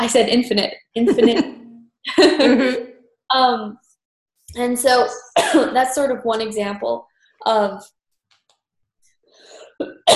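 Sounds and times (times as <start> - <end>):
speech: 0.0 - 3.8, 4.5 - 8.0
laughter: 1.0 - 2.9
person with a cold coughing: 5.2 - 5.7, 9.7 - 10.1.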